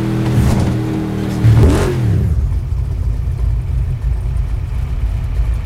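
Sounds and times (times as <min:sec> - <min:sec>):
Shelby car engine throttle off: 0:00.1 - 0:05.6.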